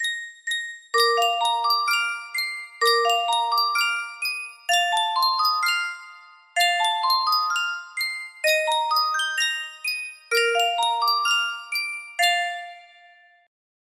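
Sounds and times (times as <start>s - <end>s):
Sankyo music box: 0.0s - 13.5s.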